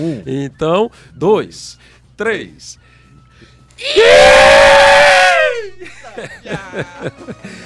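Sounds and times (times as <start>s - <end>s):
speech: 0.0s - 5.1s, 5.8s - 7.6s
crowd booing playfully: 3.8s - 5.7s
people laughing: 5.7s - 7.6s.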